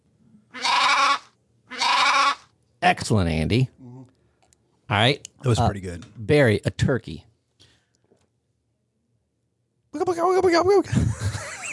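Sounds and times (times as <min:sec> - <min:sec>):
sheep bleating: 0:00.5 - 0:02.5
speech: 0:02.8 - 0:03.8, 0:04.9 - 0:07.3, 0:10.4 - 0:11.2
laughter: 0:10.8 - 0:11.7.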